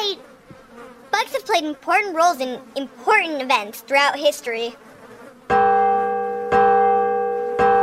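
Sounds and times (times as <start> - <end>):
speech: 1.4 - 4.9
Liberty Bell ringing: 5.5 - 7.8.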